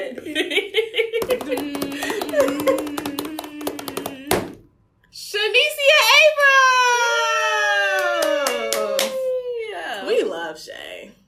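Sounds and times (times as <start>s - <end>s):
people talking: 0.0s - 4.6s, 5.2s - 11.2s
people laughing: 0.1s - 4.3s
hands drumming a drum roll on a table: 1.2s - 4.6s.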